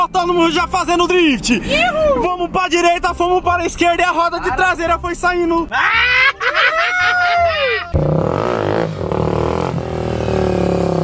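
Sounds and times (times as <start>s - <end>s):
speech: 0.0s - 6.8s, 7.9s - 9.1s
laughter: 5.7s - 8.0s
motorcycle engine revving during a wheelie: 7.9s - 11.0s.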